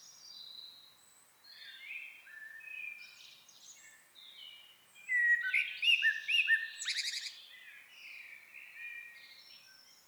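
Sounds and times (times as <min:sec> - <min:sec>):
common blackbird Turdus merula singing: 0:05.1 - 0:07.4.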